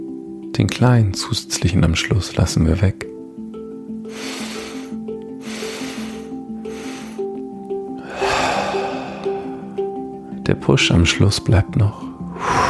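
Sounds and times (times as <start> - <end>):
speech: 0.6 - 3.1, 10.7 - 12.1
soft steady musical drone: 3.2 - 10.9
long fuller breath out: 4.1 - 7.3, 8.0 - 9.9, 12.3 - 12.6
short airy inhalations: 4.1 - 7.3, 8.0 - 9.8, 12.4 - 12.6.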